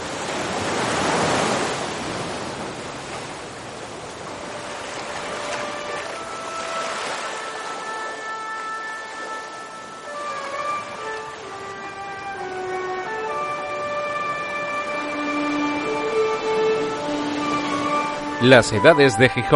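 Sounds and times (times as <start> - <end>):
Cantabrian Sea waves breaking: 0.0 - 19.5
faint tonal notes: 4.3 - 19.5
speech: 18.4 - 19.5.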